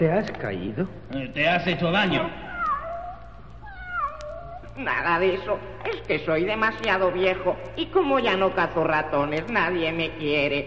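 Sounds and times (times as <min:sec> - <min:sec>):
speech: 0:00.0 - 0:02.5, 0:04.8 - 0:10.6
low hum: 0:00.0 - 0:10.6
cat meowing plaintively: 0:02.1 - 0:04.8.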